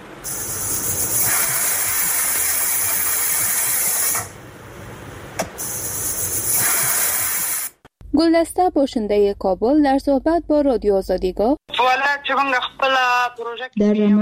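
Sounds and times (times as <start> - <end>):
pressure cooker hissing steam while cooking meat: 0.3 - 4.3, 5.6 - 7.8
speech: 8.2 - 14.2.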